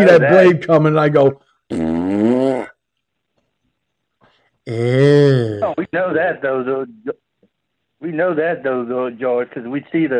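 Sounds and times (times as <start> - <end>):
speech: 0.0 - 2.2, 4.7 - 7.3, 8.0 - 10.1
loud buzzy fart noise blown with the mouth: 1.7 - 2.8.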